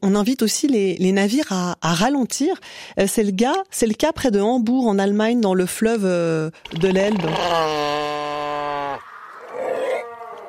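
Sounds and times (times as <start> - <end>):
speech: 0.0 - 8.0
seal moaning bellow near the Elbe river: 7.1 - 10.4.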